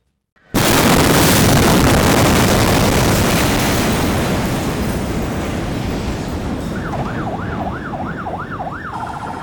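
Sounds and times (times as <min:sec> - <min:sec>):
massive ammonium nitrate explosion at port: 0:00.6 - 0:08.0
wailing emergency siren: 0:06.6 - 0:09.4.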